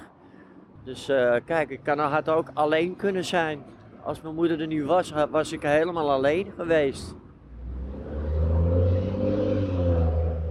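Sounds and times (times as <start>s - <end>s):
speech: 0.8s - 7.2s
bus engine rumbling and revving as it approaches: 7.5s - 10.4s.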